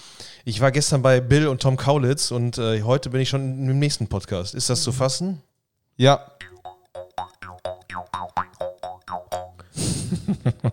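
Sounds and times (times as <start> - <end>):
speech: 0.4 - 6.4
jaw harp twanging: 6.4 - 9.6.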